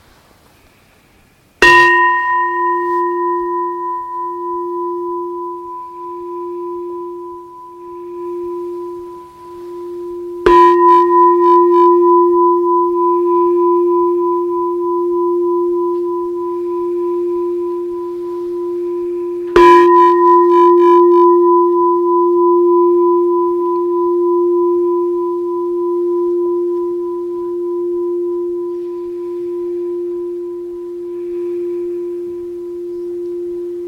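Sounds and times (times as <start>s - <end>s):
meditation bell struck to end practice: 1.6s - 33.8s.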